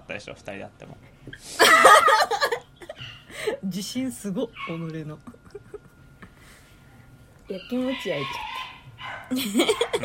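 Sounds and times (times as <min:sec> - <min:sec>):
speech: 0:00.1 - 0:05.3, 0:07.5 - 0:08.4, 0:09.3 - 0:10.0
laughter: 0:01.6 - 0:03.0, 0:05.2 - 0:06.4, 0:09.3 - 0:10.0
dog giving high-pitched yelps and whimpering barks: 0:04.5 - 0:04.9, 0:07.5 - 0:10.0.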